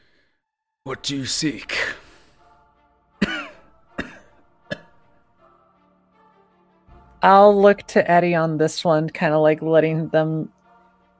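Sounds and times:
speech: 0.9s - 2.0s, 7.2s - 10.6s
person coughing harshly: 3.2s - 5.0s.

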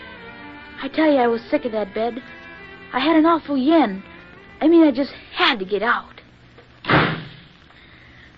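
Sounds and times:
speech: 0.8s - 6.2s
side door slamming shut: 6.8s - 7.5s.

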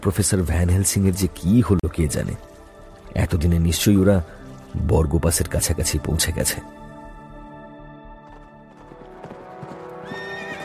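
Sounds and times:
speech: 0.0s - 2.5s, 3.1s - 6.8s
horses galloping with hooves clip-clopping: 8.2s - 10.6s
horse neighing loudly: 10.0s - 10.6s.

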